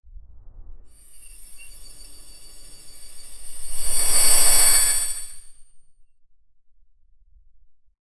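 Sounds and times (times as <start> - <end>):
mechanical metallic whoosh: 0.4 - 5.6.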